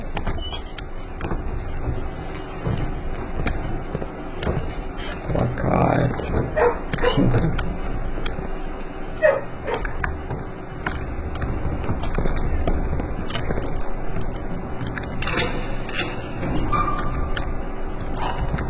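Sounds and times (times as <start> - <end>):
steady hum: 0.0 - 18.6
dogs barking: 6.4 - 7.6, 9.2 - 10.0
dogs whimpering: 9.2 - 9.9.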